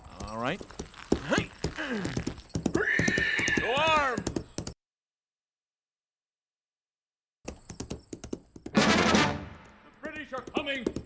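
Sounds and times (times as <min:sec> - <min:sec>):
horse hooves clip-clopping in a quick uneven trot: 0:00.0 - 0:04.8, 0:07.5 - 0:11.0
speech: 0:00.4 - 0:02.2.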